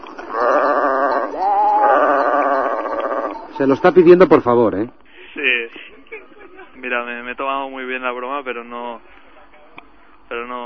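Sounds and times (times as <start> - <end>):
goat bleating: 0.1 - 3.6
speech: 3.6 - 5.8, 6.8 - 9.2, 10.3 - 10.6.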